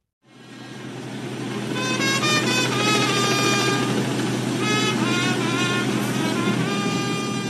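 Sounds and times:
fire truck engine drone in a funeral procession through city streets: 0.2 - 7.4
fire truck horn-like tones rising and falling: 1.6 - 7.4.

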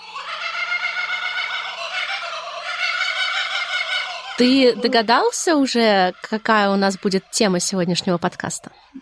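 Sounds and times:
kookaburra laughing call: 0.0 - 7.2
speech: 4.4 - 9.0.

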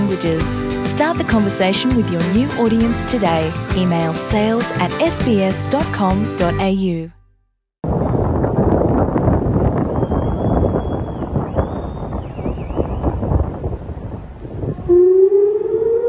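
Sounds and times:
speech: 0.1 - 7.2
rushing windy outdoor background: 7.8 - 15.1
air raid sirens wailing: 14.7 - 16.0.

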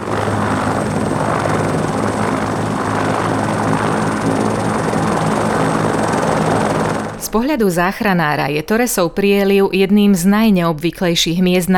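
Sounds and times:
rescue helicopter in flight rotor drone: 0.0 - 8.6
speech: 7.3 - 11.7.

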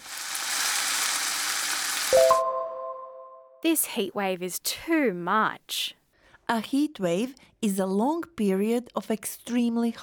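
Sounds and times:
food frying in a hot pan: 0.0 - 2.4
short ringing chime: 2.2 - 3.6
speech: 3.6 - 10.0.

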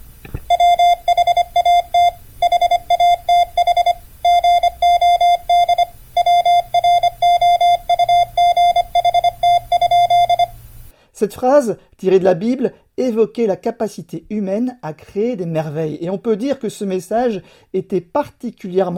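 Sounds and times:
Morse code telegraph beeps: 0.5 - 10.6
speech: 11.2 - 18.9.

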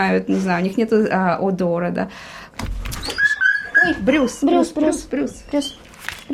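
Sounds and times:
speech: 0.0 - 2.7, 3.8 - 6.3
greyhound whining from fear: 2.9 - 6.3.

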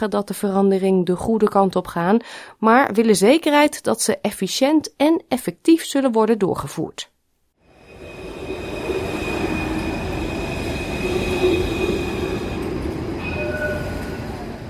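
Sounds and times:
speech: 0.0 - 7.1
Melbourne train or tram rumbling past: 7.6 - 14.6
train or tram wheels squealing: 7.7 - 14.6.

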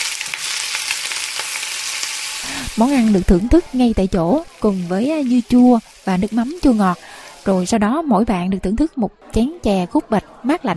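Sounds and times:
batter and egg frying crisp in a pan: 0.0 - 7.8
speech: 2.4 - 10.7.

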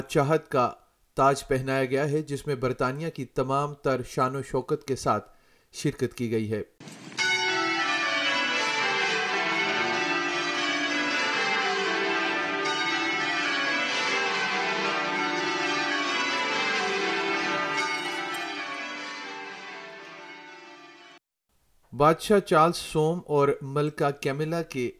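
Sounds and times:
speech: 0.1 - 7.1, 22.0 - 24.9
abbey church bells pealing: 6.8 - 21.2.

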